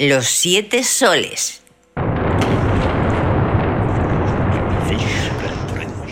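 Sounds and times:
speech: 0:00.0 - 0:01.6
loud rumbling thunder crash: 0:02.0 - 0:06.1.

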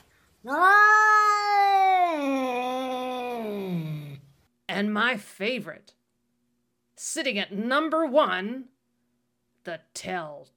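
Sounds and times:
speech: 0:00.4 - 0:00.8, 0:04.9 - 0:06.0, 0:07.0 - 0:08.7, 0:09.6 - 0:10.5
cat caterwauling: 0:00.4 - 0:04.2.

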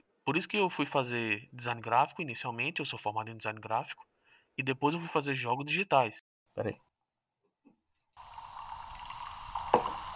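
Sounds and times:
speech: 0:00.3 - 0:06.9
water poured steadily into a glass: 0:08.2 - 0:10.1.

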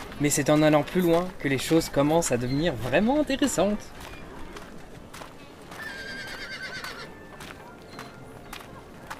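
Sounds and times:
busy outdoor murmur: 0:00.0 - 0:09.1
horse hooves clip-clopping in a horse corral: 0:00.0 - 0:09.1
speech: 0:00.2 - 0:04.2
horse whinnying in a horse corral at Thunder Mesa: 0:05.8 - 0:07.1.

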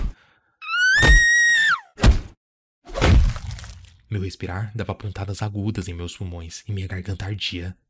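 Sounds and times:
woman screaming: 0:00.6 - 0:01.9
speech: 0:04.1 - 0:07.8.

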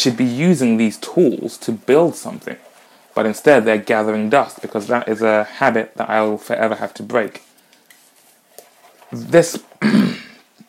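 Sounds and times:
speech: 0:00.0 - 0:07.5, 0:09.1 - 0:10.0
harsh throaty coughs: 0:09.8 - 0:10.5.

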